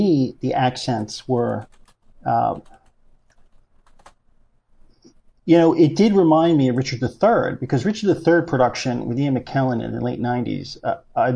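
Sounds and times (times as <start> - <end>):
speech: 0.0 - 2.8, 5.5 - 11.3
typing on a computer keyboard: 1.6 - 4.2.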